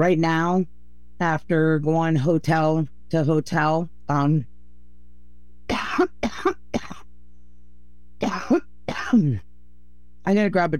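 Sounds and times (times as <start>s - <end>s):
speech: 0.0s - 4.5s, 5.7s - 6.9s, 8.3s - 9.5s, 10.2s - 10.7s
woman with a hoarse voice having a coughing fit: 5.7s - 7.0s, 8.2s - 9.4s.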